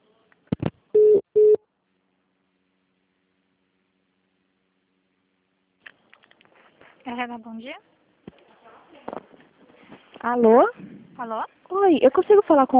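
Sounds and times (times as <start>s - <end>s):
telephone busy signal on a phone line: 1.0s - 1.6s
speech: 7.1s - 7.9s, 10.2s - 12.7s.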